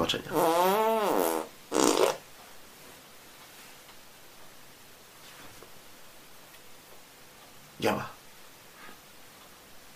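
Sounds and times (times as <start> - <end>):
speech: 0.1 - 1.4, 7.8 - 8.1
buzzy sputtering fart: 0.3 - 2.2.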